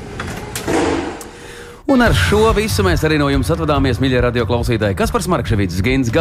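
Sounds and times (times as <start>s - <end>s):
garage door sliding shut: 0.0s - 1.6s
speech: 1.9s - 6.1s.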